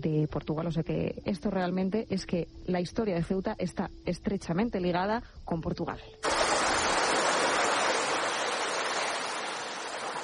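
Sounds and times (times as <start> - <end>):
speech: 0.0 - 6.4
sea waves surging with roar of surf: 6.2 - 10.2.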